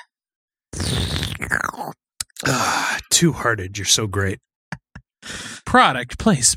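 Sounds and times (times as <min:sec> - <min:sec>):
person slurping beer: 0:00.8 - 0:03.0
breathy satisfied exhale: 0:02.4 - 0:03.0, 0:05.2 - 0:05.6
speech: 0:03.2 - 0:04.5, 0:05.3 - 0:06.5.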